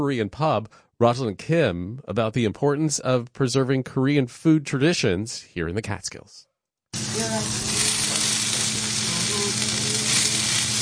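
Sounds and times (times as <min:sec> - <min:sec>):
speech: 0:00.0 - 0:07.8
eel sizzling in a hot pan: 0:07.0 - 0:10.7.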